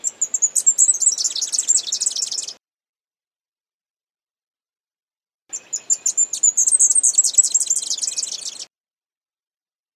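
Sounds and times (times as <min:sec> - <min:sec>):
leaf warbler singing: 0:00.0 - 0:02.6, 0:05.5 - 0:08.7.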